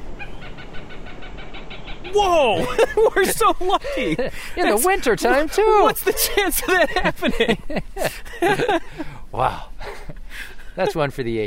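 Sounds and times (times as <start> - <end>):
Cooper's hawk giving harsh cackling calls: 0.0 - 3.8
low rumble of outdoor noise: 0.0 - 11.4
speech: 2.1 - 9.7, 10.8 - 11.4.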